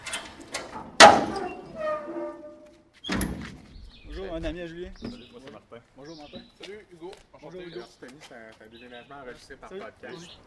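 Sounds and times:
covered trailer door thudding shut: 0.0s - 2.5s, 3.1s - 3.6s
faint voices murmuring: 4.0s - 10.4s
speech: 4.4s - 10.4s.

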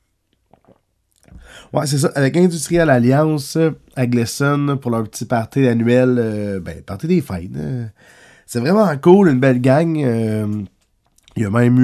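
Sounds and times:
slurp of a small sip of water: 0.4s - 1.7s
soft wet mouth clicks while sipping water: 0.4s - 1.7s, 11.1s - 11.4s
breathy exhale: 1.3s - 1.8s, 8.0s - 8.5s
speech: 1.5s - 10.7s, 11.4s - 11.8s.

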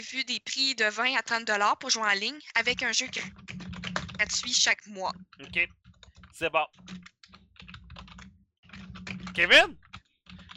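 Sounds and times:
speech: 0.0s - 3.6s, 4.2s - 5.8s, 6.4s - 7.1s, 9.4s - 9.8s
rapid clattering keystrokes on a mechanical keyboard: 2.6s - 4.8s, 5.4s - 10.5s.

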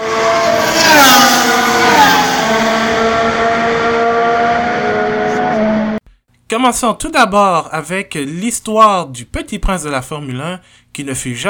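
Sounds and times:
race car engines revving at race start: 0.0s - 6.0s
speech: 6.6s - 11.4s.

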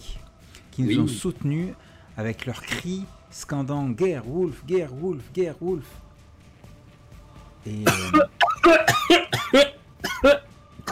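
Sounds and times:
speech: 0.8s - 6.0s, 7.6s - 9.7s
throat-clearing coughs: 7.8s - 10.9s.

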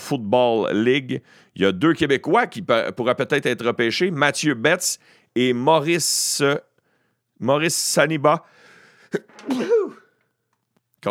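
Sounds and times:
speech: 0.1s - 6.7s, 7.4s - 10.0s
person sneezing: 9.2s - 10.1s.

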